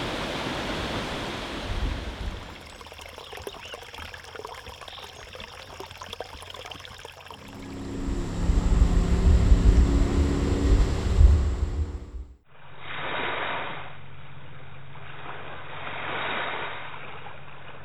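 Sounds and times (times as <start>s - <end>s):
rushing water: 0.0s - 12.2s
waves lapping: 0.0s - 12.3s
boat motor humming on a lake: 2.2s - 12.4s.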